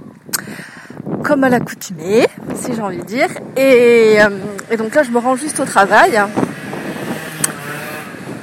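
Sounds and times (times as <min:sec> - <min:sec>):
wind buffeting a microphone outdoors while someone walks: 0:00.0 - 0:08.4
speech: 0:01.3 - 0:06.5
sharp click: 0:07.4 - 0:07.6.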